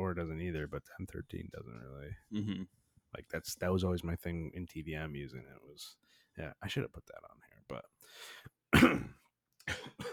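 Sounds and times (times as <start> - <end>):
speech: 0.2 - 9.2, 9.8 - 10.1
dry coughs from a tickle in the throat: 8.7 - 10.1.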